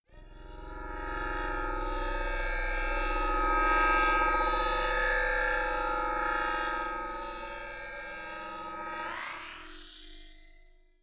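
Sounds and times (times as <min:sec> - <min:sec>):
long detuned whoosh drone: 0:00.2 - 0:07.7.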